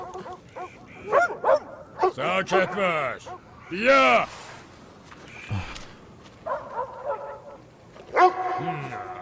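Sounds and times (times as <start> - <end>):
dog barking: 0.0 - 2.2, 6.4 - 8.6
speech: 2.2 - 4.4.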